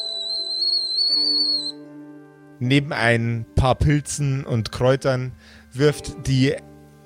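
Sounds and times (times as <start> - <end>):
kettle whistling as water boils: 0.0 - 1.8
speech: 2.6 - 6.7.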